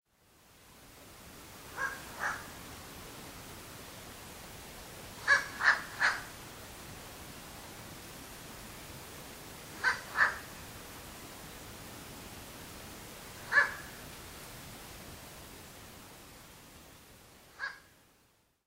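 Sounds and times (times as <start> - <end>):
Ural owl calling in Osaka: 1.7 - 2.6, 5.2 - 6.4, 9.8 - 10.6, 13.4 - 14.0, 17.5 - 18.0.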